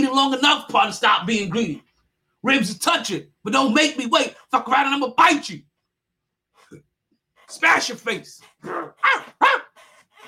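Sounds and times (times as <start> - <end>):
speech: 0.1 - 5.7, 7.5 - 9.6
person imitating gruff dog barks and growls: 8.6 - 9.8.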